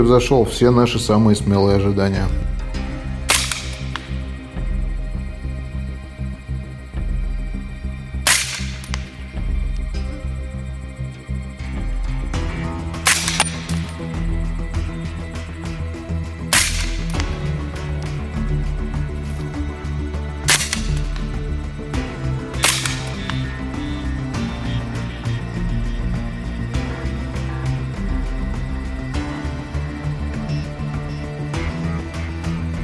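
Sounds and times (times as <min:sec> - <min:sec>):
speech: 0:00.0 - 0:02.5
steady droning music bed: 0:00.0 - 0:32.8
sniper rifle shots: 0:03.3 - 0:04.3, 0:08.3 - 0:09.2, 0:13.0 - 0:14.0, 0:16.5 - 0:17.4, 0:20.4 - 0:21.4, 0:22.5 - 0:24.6.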